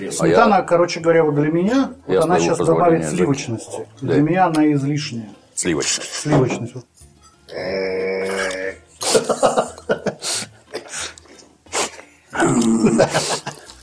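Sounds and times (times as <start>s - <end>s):
speech: 0.0s - 6.9s, 7.5s - 8.1s, 9.2s - 9.7s, 12.4s - 13.6s
grunts and mutters: 7.5s - 9.4s, 12.3s - 13.6s
men growling while tasting borscht: 7.5s - 9.7s, 12.3s - 13.6s
laughter: 9.0s - 10.9s, 12.6s - 13.7s.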